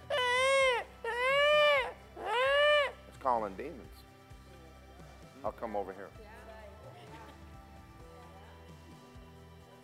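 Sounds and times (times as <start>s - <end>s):
voice imitating a dying rabbit's cry to call a coyote: 0.0s - 3.0s
speech: 3.4s - 4.1s, 5.4s - 6.4s.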